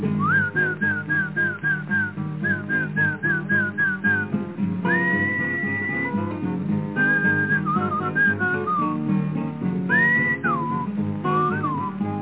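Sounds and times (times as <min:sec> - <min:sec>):
person whistling a calling tune to call a horse: 0:00.2 - 0:06.3, 0:07.0 - 0:09.1, 0:09.9 - 0:12.0.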